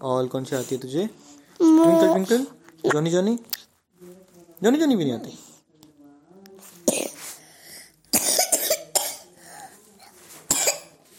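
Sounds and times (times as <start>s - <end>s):
speech: 0.0s - 3.6s, 4.6s - 5.4s
child coughing in short harsh bursts: 6.9s - 7.2s, 8.1s - 9.3s, 10.5s - 11.1s.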